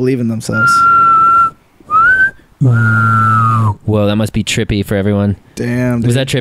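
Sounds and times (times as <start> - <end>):
speech: 0.0 - 1.1, 2.6 - 3.2, 3.9 - 6.3
person whistling two sustained notes: 0.6 - 3.8.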